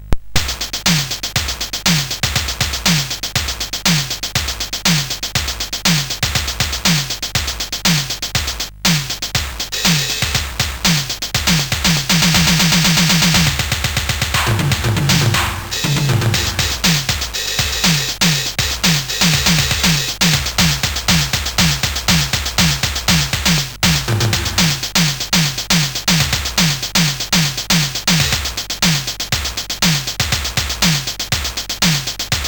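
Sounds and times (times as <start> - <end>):
digi drums on sid CSG8580R5 chip: 0.3 - 32.4.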